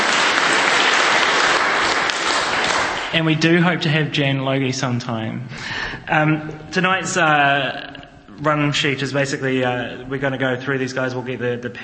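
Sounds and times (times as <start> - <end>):
crowd applauding at a conference: 0.0 - 3.5
speech: 3.1 - 11.8.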